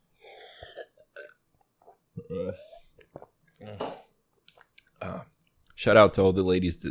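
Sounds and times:
person sipping water with slurps and swallows: 0:00.2 - 0:05.0
speech: 0:02.3 - 0:02.7, 0:05.8 - 0:06.9.

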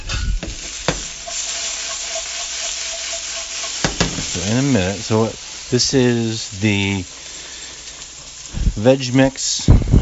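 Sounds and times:
garlic frying in a pan over high heat: 0:00.0 - 0:09.9
stirring knocks in a pan: 0:00.1 - 0:04.9
speech: 0:04.4 - 0:07.2, 0:08.8 - 0:09.8.

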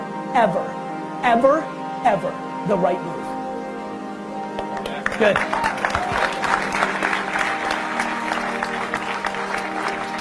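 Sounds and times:
speech: 0:00.4 - 0:03.2, 0:05.2 - 0:06.0
audience clapping: 0:04.6 - 0:10.1.

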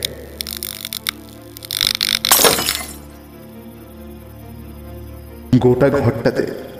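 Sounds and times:
sharp ticks: 0:00.0 - 0:02.3
light bulb bursting inside a room: 0:00.4 - 0:03.1
glass shattering: 0:02.0 - 0:03.1
speech: 0:05.6 - 0:06.7.

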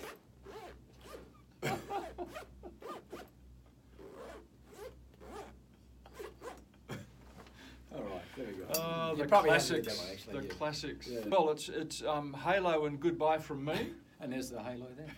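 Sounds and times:
zipper zipping up and down: 0:00.0 - 0:03.3, 0:03.9 - 0:06.6
speech: 0:08.8 - 0:15.1.

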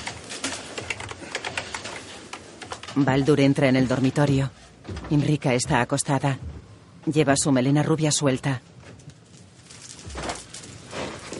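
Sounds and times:
fingers typing on a computer keyboard: 0:00.0 - 0:03.2
speech: 0:03.0 - 0:08.7.

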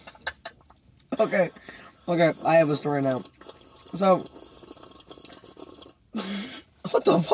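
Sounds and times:
speech: 0:01.2 - 0:04.4, 0:07.1 - 0:07.3
person slurping water: 0:01.6 - 0:06.1.

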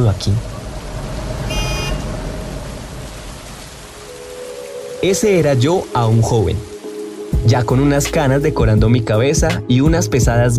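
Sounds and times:
speech: 0:00.0 - 0:00.5, 0:05.0 - 0:06.7, 0:07.3 - 0:10.5
low rumble of city traffic: 0:00.0 - 0:08.6
steady rain: 0:00.0 - 0:09.4
car horn honking: 0:01.4 - 0:02.2.

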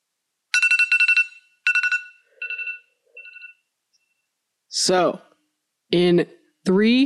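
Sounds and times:
timer alarm ringing: 0:00.5 - 0:03.6
speech: 0:04.7 - 0:05.3, 0:05.9 - 0:07.0.

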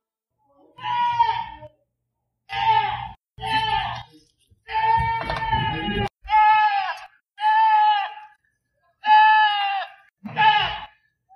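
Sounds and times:
goat screaming in human-like bleats: 0:00.8 - 0:01.7, 0:02.5 - 0:04.1, 0:04.7 - 0:08.3, 0:09.0 - 0:11.0.

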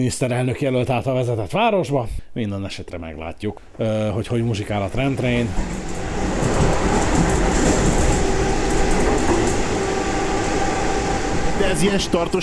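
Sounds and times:
speech: 0:00.0 - 0:06.8, 0:11.6 - 0:12.4
train rolling along the rails: 0:04.6 - 0:12.4
clickety-clack of train wheels over track joints: 0:04.9 - 0:09.9.

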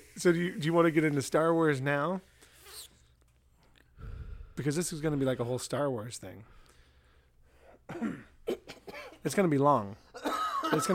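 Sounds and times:
speech: 0:00.2 - 0:02.3, 0:04.6 - 0:06.6, 0:07.9 - 0:08.2, 0:09.2 - 0:10.9
person coughing harshly: 0:07.7 - 0:09.2, 0:10.1 - 0:10.9.

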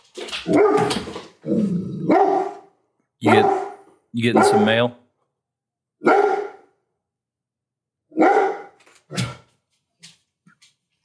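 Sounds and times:
speech: 0:00.4 - 0:02.2, 0:04.1 - 0:05.0
dog barking: 0:02.1 - 0:04.9, 0:06.0 - 0:06.7, 0:08.1 - 0:08.8.

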